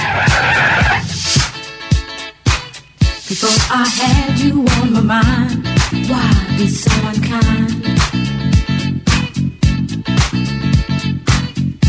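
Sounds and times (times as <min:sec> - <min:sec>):
car tires skidding: 0:00.0 - 0:01.6
rhythmic thumping beats: 0:00.0 - 0:11.8
speech: 0:03.8 - 0:07.8.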